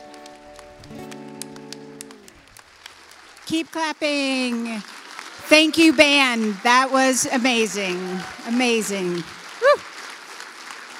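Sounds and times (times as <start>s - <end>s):
audience applause: 0.0s - 10.9s
speech: 3.5s - 9.4s
person whooping: 9.6s - 9.8s.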